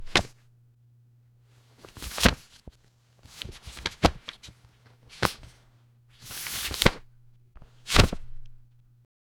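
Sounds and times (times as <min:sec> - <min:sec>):
large hardcover book opening: 0:00.0 - 0:00.4, 0:01.8 - 0:08.6.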